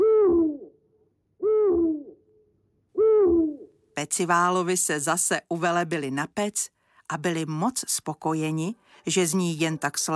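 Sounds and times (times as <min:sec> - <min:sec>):
owl hooting: 0:00.0 - 0:00.7, 0:01.4 - 0:02.2, 0:03.0 - 0:03.7
speech: 0:04.0 - 0:10.1.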